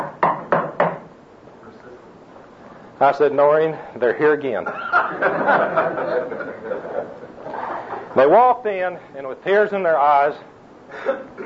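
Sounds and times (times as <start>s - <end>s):
knocking on a wooden door: 0.0s - 1.1s
speech: 3.0s - 7.2s, 8.2s - 11.4s
laughter: 4.6s - 8.2s.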